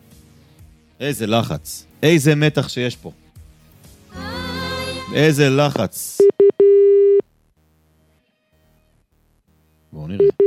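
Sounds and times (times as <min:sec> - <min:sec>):
speech: 0:01.0 - 0:03.2, 0:05.1 - 0:06.3
telephone tone while a call waits on hold: 0:06.2 - 0:07.2, 0:10.2 - 0:10.4.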